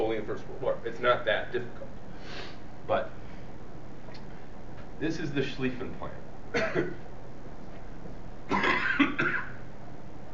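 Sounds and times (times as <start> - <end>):
speech: 0.2 - 3.2, 5.0 - 7.1, 8.5 - 9.5
harsh cough: 6.5 - 7.0, 8.5 - 9.6
throat-clearing rasp: 6.6 - 7.0, 8.5 - 9.6.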